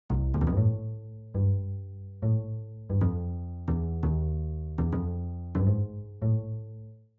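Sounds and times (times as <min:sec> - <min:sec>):
bass loop: 0:00.1 - 0:06.7.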